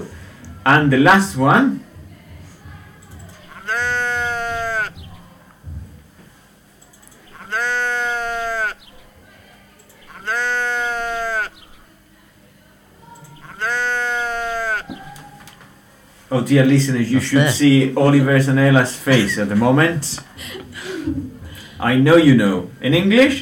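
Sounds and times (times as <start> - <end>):
speech: 0.7 - 1.8, 16.4 - 21.2, 21.8 - 23.4
sheep bleating: 3.5 - 5.3, 7.3 - 8.9, 10.1 - 11.7, 13.4 - 15.2
laughter: 18.9 - 21.8.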